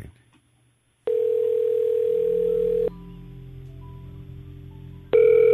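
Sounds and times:
person answering the phone: 0:01.1 - 0:02.9
steady ringing tone on the phone line: 0:01.1 - 0:02.9, 0:05.1 - 0:05.5.

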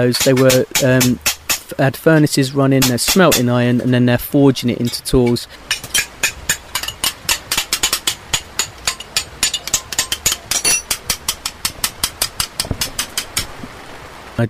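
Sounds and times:
speech: 0:00.0 - 0:05.9
blacksmith hammer striking an anvil while forging: 0:00.2 - 0:01.6, 0:05.7 - 0:13.2.

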